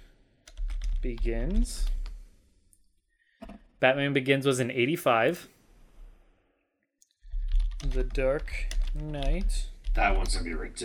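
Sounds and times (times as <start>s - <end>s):
typing on a computer keyboard: 0.4s - 2.2s, 7.3s - 10.5s
speech: 1.0s - 2.0s, 3.8s - 5.5s, 7.9s - 10.8s.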